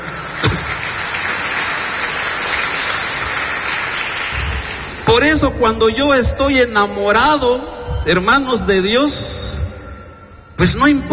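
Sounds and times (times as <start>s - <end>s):
audience clapping hands in sustained applause: 0.0s - 5.1s
speech: 5.2s - 9.4s, 10.6s - 11.1s.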